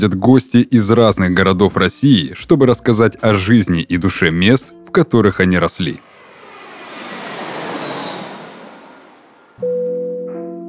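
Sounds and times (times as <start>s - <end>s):
speech: 0.0s - 6.1s
airplane engine roar in cabin before landing: 5.7s - 9.6s.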